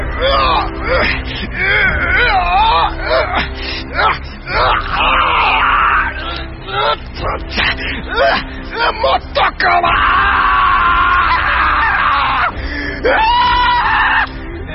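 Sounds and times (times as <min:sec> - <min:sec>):
man screaming: 0:00.2 - 0:07.5, 0:08.1 - 0:14.7.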